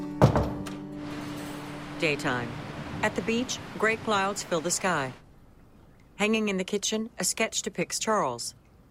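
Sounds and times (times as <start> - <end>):
door thudding shut: 0.2 - 0.8
speech: 2.0 - 5.2, 6.2 - 8.6.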